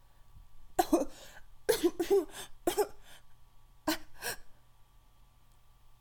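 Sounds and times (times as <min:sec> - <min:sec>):
person coughing: 0:00.8 - 0:03.0, 0:03.9 - 0:04.5.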